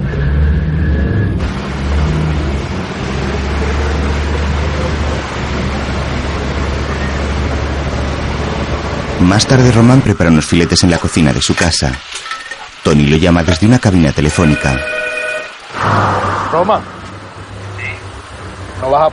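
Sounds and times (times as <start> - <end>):
car being driven: 0.0 - 11.1, 15.4 - 19.1
speech: 9.3 - 15.0, 15.9 - 17.0, 18.8 - 19.1.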